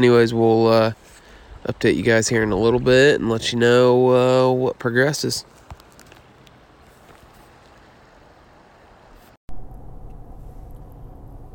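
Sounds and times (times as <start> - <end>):
speech: 0.0 - 5.6
road and engine noise inside a moving car: 5.4 - 11.5.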